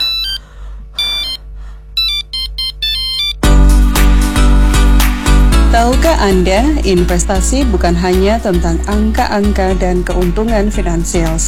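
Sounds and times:
mobile phone ringtone with bright repeating electronic melody: 0:00.0 - 0:00.4, 0:01.0 - 0:01.4, 0:02.0 - 0:03.5
loud full burst of music: 0:03.3 - 0:11.4
speech: 0:05.8 - 0:11.4.

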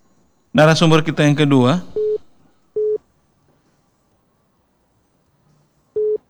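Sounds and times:
faint hiss: 0:00.0 - 0:06.2
speech: 0:00.6 - 0:02.0
telephone busy tone beeps after a phone call is cut off: 0:01.9 - 0:02.2, 0:02.8 - 0:03.0, 0:06.0 - 0:06.2.

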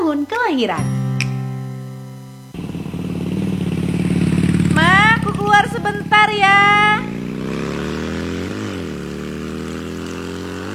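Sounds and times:
motorcycle engine droning while ridden away: 0:00.0 - 0:10.7
speech: 0:00.2 - 0:01.0, 0:05.5 - 0:07.2.

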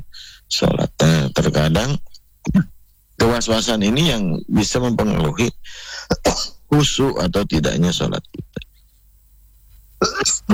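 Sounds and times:
person coughing: 0:00.0 - 0:02.8, 0:05.1 - 0:06.6, 0:10.0 - 0:10.5
throat clearing: 0:00.0 - 0:02.8, 0:05.0 - 0:06.6, 0:08.2 - 0:08.8, 0:10.0 - 0:10.5
speech: 0:00.2 - 0:08.4, 0:10.0 - 0:10.5.

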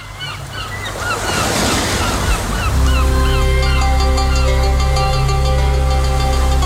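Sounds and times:
ocean waves crashing on a coastal shore in Indonesia during a high-wave warning: 0:00.0 - 0:06.6
sustained droning tone: 0:02.6 - 0:06.6.

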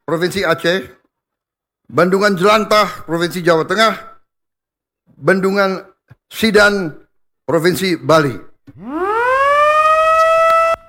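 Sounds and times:
speech: 0:00.1 - 0:01.0, 0:01.9 - 0:04.1, 0:05.1 - 0:09.0
siren wailing at a dam inauguration ceremony in Lombok, West Nusa Tenggara: 0:08.8 - 0:10.8.

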